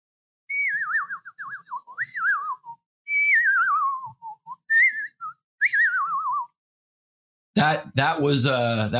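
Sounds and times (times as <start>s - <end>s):
person whistling a trilling bird-like call: 0.5s - 6.6s
speech: 7.6s - 8.9s.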